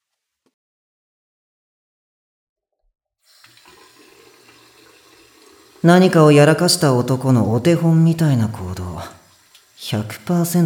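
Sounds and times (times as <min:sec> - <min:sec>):
water running from a tap while hands are washed at a sink: 0:03.2 - 0:10.6
speech: 0:05.8 - 0:09.2, 0:09.9 - 0:10.6.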